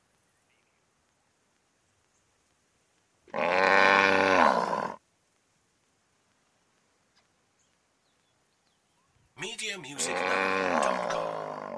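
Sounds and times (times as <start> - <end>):
cow mooing: 3.3 - 5.0, 10.0 - 11.7.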